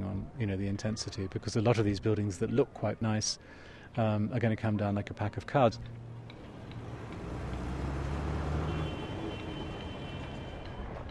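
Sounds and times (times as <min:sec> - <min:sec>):
speech: 0:00.4 - 0:06.0
broadband road noise: 0:04.6 - 0:11.1
vehicle moving through city traffic: 0:05.4 - 0:11.1.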